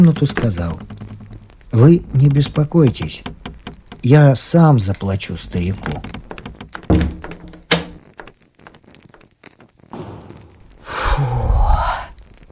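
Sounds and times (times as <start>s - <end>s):
speech: 0.0s - 0.9s, 1.7s - 3.4s, 4.0s - 6.2s
heavy outer door slamming shut: 5.8s - 8.0s, 10.0s - 10.9s
breathy rush: 10.0s - 12.4s.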